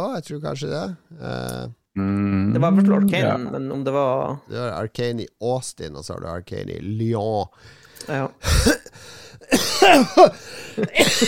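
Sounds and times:
speech: 0:00.0 - 0:11.2
person having a coughing fit: 0:09.5 - 0:11.2.

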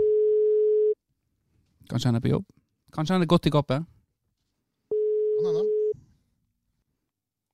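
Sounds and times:
phone ringback tone beeps: 0:00.0 - 0:01.0, 0:04.9 - 0:06.0
speech: 0:01.9 - 0:04.0, 0:05.4 - 0:05.7.

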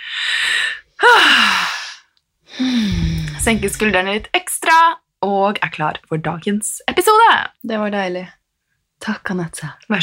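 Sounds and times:
deep breathing in and out: 0:00.0 - 0:03.8
voiced falling sigh: 0:02.5 - 0:03.5
speech: 0:03.5 - 0:08.4, 0:09.0 - 0:10.0.

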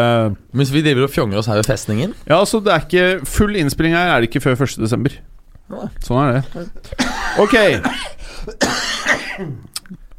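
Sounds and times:
speech: 0:00.0 - 0:10.0
harsh chesty coughing: 0:06.6 - 0:09.7
rough throat clearing: 0:06.9 - 0:10.0.

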